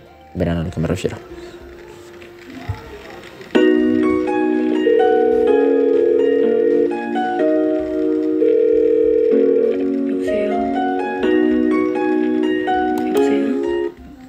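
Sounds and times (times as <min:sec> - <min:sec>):
speech: 0:00.4 - 0:01.6
telephone ringing inside a song: 0:03.6 - 0:12.9
song music: 0:03.6 - 0:14.0.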